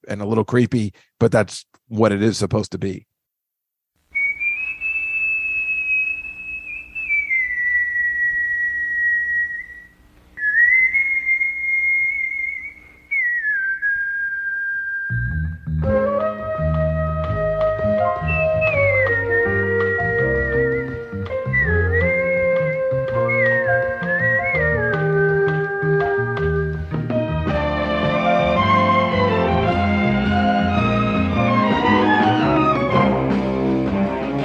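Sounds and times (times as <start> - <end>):
speech: 0.1 - 3.1
lone clear whistled TV theme melody: 4.2 - 33.5
full band with drums and bass playing the theme: 15.8 - 34.4.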